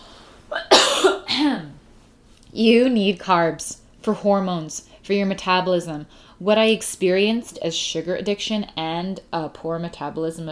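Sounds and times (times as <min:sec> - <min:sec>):
person coughing: 0:00.5 - 0:01.8
speech: 0:02.6 - 0:10.5.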